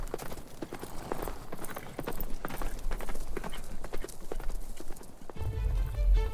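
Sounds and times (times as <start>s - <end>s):
horses galloping: 0.0s - 5.8s
deep rumble: 5.4s - 6.3s.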